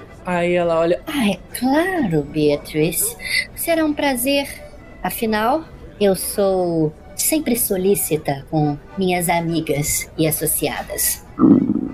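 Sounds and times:
speech: 0.2 - 11.6
stomach growling: 11.4 - 11.9.

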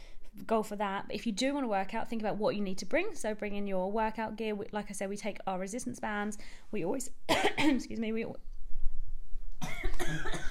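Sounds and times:
speech: 0.4 - 8.5, 9.8 - 10.4
harsh noisy coughing fit: 7.3 - 7.8, 9.6 - 10.4.

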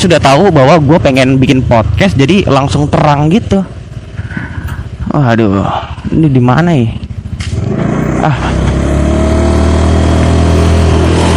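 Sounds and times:
speech: 0.0 - 3.8, 5.1 - 7.0, 8.2 - 8.6
car engine humming as car passes while turning: 7.6 - 11.3.

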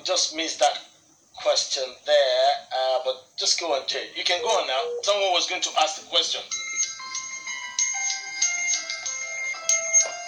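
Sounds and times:
speech: 0.1 - 6.6
phone electronic ringtone for an incoming call: 6.5 - 10.2.

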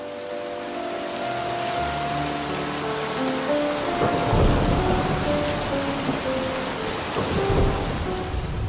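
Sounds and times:
soft sustained musical tones: 0.0 - 8.4
heavy rain in a thunderstorm: 0.0 - 8.6
deep rolls of thunder: 3.8 - 8.6.

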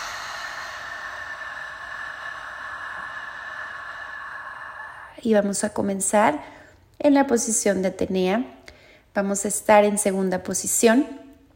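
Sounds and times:
person exhaling deeply through the mouth during a deep-breathing exercise: 0.0 - 5.2
speech: 5.2 - 8.6, 9.2 - 11.2.

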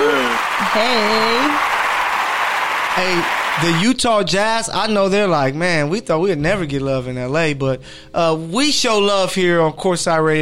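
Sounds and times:
person whooping and cheering: 0.0 - 1.7
hand clapping: 0.0 - 3.8
speech: 0.8 - 1.7, 3.0 - 10.4.

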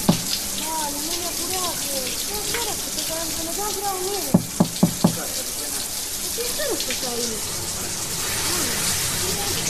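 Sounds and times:
quick sharp knocks on a door: 0.0 - 0.4, 4.3 - 5.4
shower running at home: 0.0 - 9.6.

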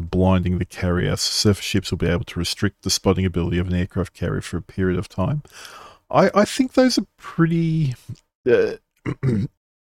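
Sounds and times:
speech: 0.2 - 9.6
throaty voiced coughing fit: 9.1 - 9.6.

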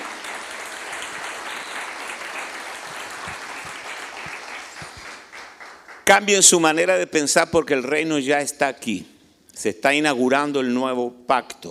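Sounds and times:
crowd clapping: 0.0 - 6.5
speech: 6.1 - 11.6.

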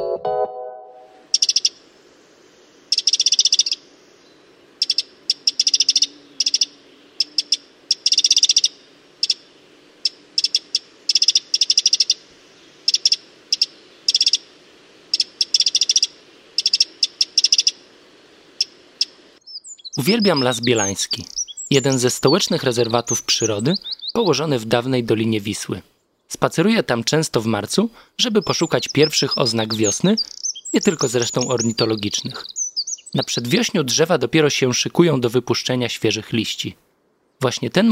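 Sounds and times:
bird chirps and trills in a woodland: 1.0 - 1.9, 2.6 - 14.5, 15.1 - 17.8, 18.6 - 24.8, 28.2 - 34.0
speech: 20.0 - 32.5, 33.1 - 36.8, 37.4 - 37.9.

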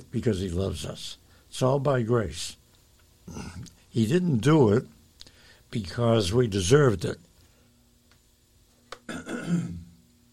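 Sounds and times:
speech: 0.1 - 2.6, 3.3 - 5.0, 5.7 - 7.3
raspy throat clearing: 9.0 - 10.0.

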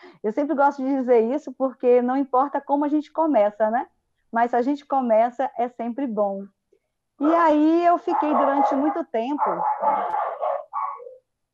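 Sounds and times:
speech: 0.2 - 6.6, 7.2 - 10.2
dogs barking: 7.2 - 11.2.

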